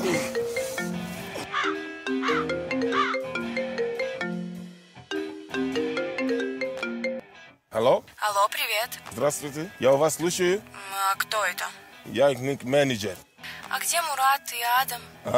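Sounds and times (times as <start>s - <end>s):
telephone ringing with a bright electronic melody ringtone: 0.0s - 7.2s
speech: 7.8s - 15.3s.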